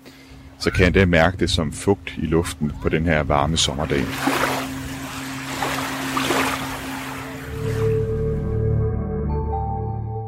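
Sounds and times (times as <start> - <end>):
speech: 0.6 - 4.5
sustained musical tones: 3.3 - 10.2
waves washing on the beach on a warm humid summer day: 3.5 - 8.1.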